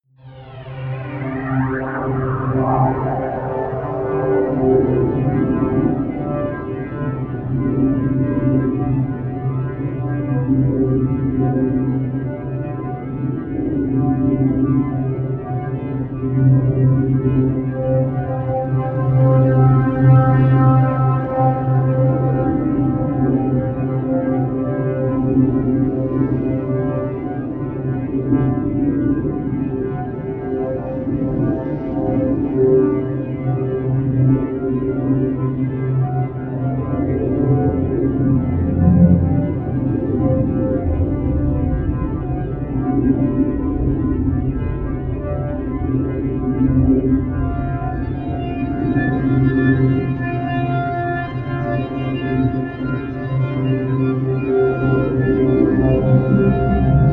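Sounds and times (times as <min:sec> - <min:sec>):
frantic attuning drone: 0:00.2 - 0:57.1.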